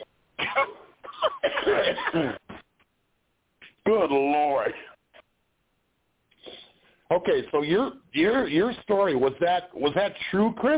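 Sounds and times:
fit of harsh coughing: 0.4s - 2.6s
speech: 2.1s - 2.4s, 3.9s - 4.8s, 7.1s - 10.7s.

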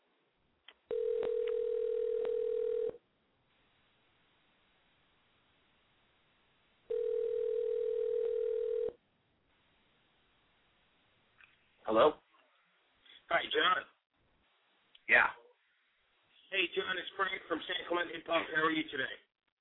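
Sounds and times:
telephone tones on an outgoing call: 0.9s - 3.0s, 6.9s - 9.0s
speech: 11.9s - 12.2s, 16.7s - 19.3s.

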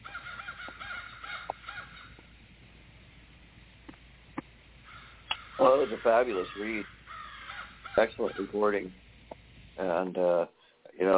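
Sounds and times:
crows cawing: 0.0s - 2.4s, 4.8s - 8.8s
speech: 5.6s - 6.9s, 8.0s - 9.0s, 9.8s - 11.1s.

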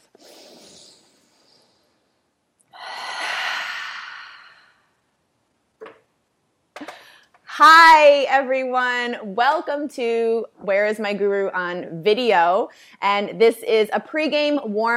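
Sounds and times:
deep breath in and out during a wellness warm-up: 0.2s - 5.0s
speech: 7.6s - 14.9s.

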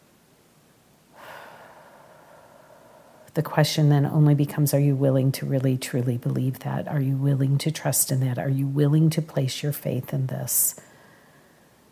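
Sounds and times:
soft inhaled breath: 1.1s - 3.3s, 10.8s - 11.8s
speech: 3.4s - 10.9s.

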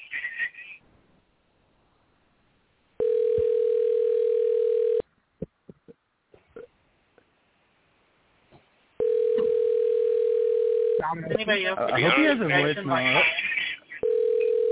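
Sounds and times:
people talking: 0.0s - 0.8s, 11.0s - 13.8s
telephone ringback tone on an unanswered call: 3.0s - 5.0s, 9.0s - 11.0s, 14.0s - 14.6s.

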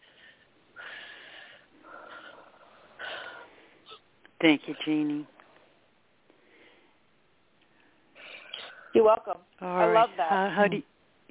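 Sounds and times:
deep slow breaths in a guided spiritual breathing exercise: 0.0s - 4.1s, 5.4s - 9.0s
speech: 4.4s - 5.4s, 9.0s - 10.9s.

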